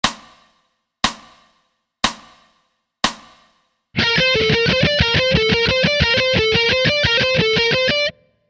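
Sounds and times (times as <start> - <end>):
alternate picking pattern in C: 4.0 - 8.4.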